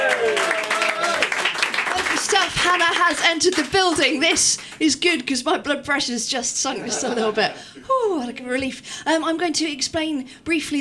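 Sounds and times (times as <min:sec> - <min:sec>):
large crowd cheering and whooping: 0:00.0 - 0:01.5
dense audience clapping from a large crowd: 0:00.0 - 0:04.9
speech: 0:02.5 - 0:10.7
laughter: 0:06.7 - 0:07.6.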